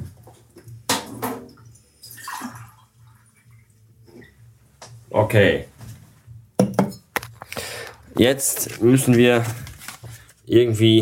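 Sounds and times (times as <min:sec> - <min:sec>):
water pouring into a glass: 0:02.0 - 0:03.7
speech: 0:05.2 - 0:05.7, 0:08.2 - 0:09.7, 0:10.5 - 0:11.0.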